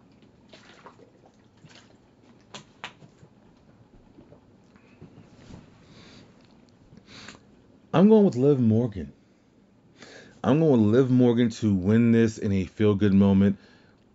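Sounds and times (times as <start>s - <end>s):
person taking a swig of water: 0.1s - 3.4s
speech: 8.0s - 9.2s, 10.4s - 13.7s.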